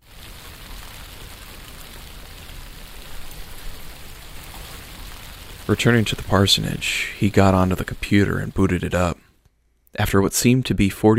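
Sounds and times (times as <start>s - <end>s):
steady rain spattering on surfaces: 0.0s - 9.4s
speech: 5.7s - 9.2s, 10.0s - 11.1s.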